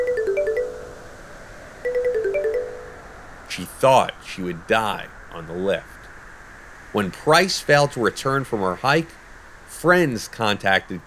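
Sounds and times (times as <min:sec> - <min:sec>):
phone alarm ringing with stepped electronic tones: 0:00.0 - 0:01.0, 0:01.9 - 0:03.1
speech: 0:03.6 - 0:06.0, 0:06.9 - 0:11.0.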